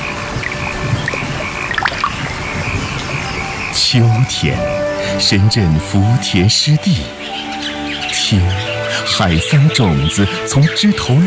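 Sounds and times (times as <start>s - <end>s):
summer raindrops splashing into shallow water of an early rice paddy in Zengcheng: 0.0s - 3.6s
speech: 3.9s - 7.2s, 8.3s - 11.2s.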